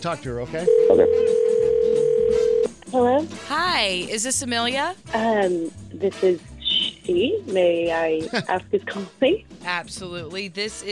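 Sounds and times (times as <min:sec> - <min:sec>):
speech: 0:00.0 - 0:01.5, 0:02.9 - 0:06.5, 0:07.1 - 0:10.9
telephone tone: 0:00.7 - 0:02.7.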